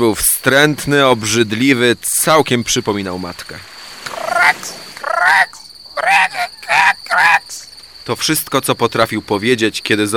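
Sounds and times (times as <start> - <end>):
speech: 0.0 - 3.7, 4.4 - 10.1
toad croaking: 4.0 - 7.7.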